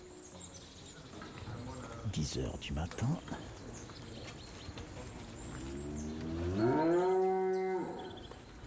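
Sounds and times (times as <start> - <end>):
speech: 2.1 - 3.6
cow mooing as the herd heads out to the fields: 6.2 - 8.2.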